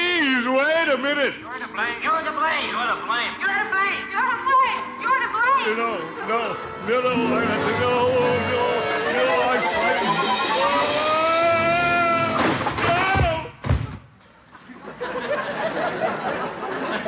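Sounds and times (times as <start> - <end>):
low noise: 0.0 - 17.0
speech: 1.0 - 4.9, 5.6 - 10.8
laughter: 6.0 - 12.3, 14.5 - 17.0
drawn-out wavering vocal cry: 7.1 - 13.2.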